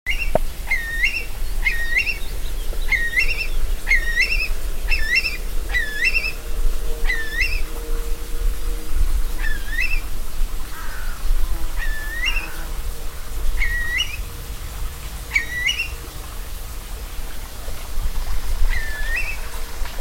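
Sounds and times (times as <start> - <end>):
curlew rising whistled calls: 0.1 - 7.8, 9.3 - 10.1, 11.8 - 12.7, 13.6 - 14.3, 15.3 - 16.0, 18.7 - 19.5
faint hum: 0.2 - 19.9
steady low rumble: 1.3 - 19.9.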